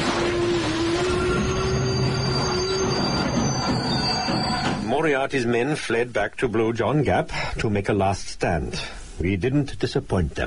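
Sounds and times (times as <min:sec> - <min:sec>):
train rolling rumble: 0:00.2 - 0:05.1
train brakes squealing on rails: 0:00.8 - 0:04.9
speech: 0:05.1 - 0:10.4.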